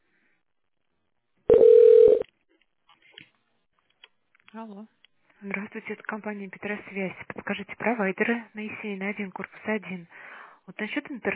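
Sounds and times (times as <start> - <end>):
telephone line beep while a call is transferred: 1.5 - 2.2
speech: 4.6 - 11.3.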